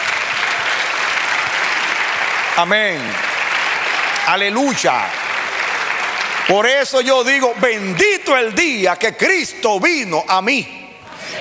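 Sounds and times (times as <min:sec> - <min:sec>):
church congregation applauding during a worship service: 0:00.0 - 0:10.5
speech: 0:02.6 - 0:03.3, 0:04.2 - 0:05.2, 0:06.5 - 0:10.8.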